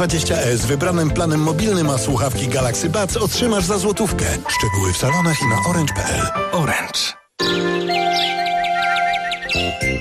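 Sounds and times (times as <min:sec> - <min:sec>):
speech: 0:00.0 - 0:08.4
sparrows chirping in a supermarket radio advert: 0:07.4 - 0:09.9.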